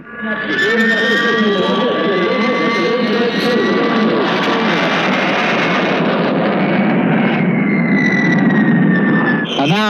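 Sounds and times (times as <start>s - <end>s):
speech: 0.0s - 1.5s
talk: 0.0s - 4.7s
Canberra jet bomber diving past at speed: 0.0s - 9.8s.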